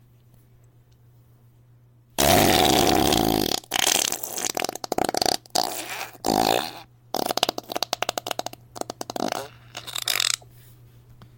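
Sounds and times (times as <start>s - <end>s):
very wet fart: 2.2s - 10.4s.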